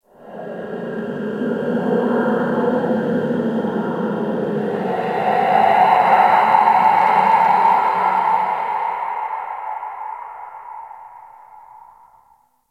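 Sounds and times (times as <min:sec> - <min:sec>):
wind in an ice cave: 0:00.0 - 0:12.5.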